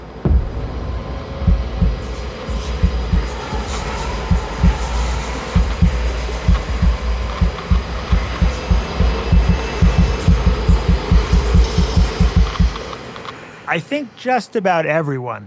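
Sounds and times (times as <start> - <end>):
low tense rumbling backdrop: 0.1 - 12.9
loud thumping heartbeat sound effect: 1.3 - 12.8
speech: 13.9 - 15.4.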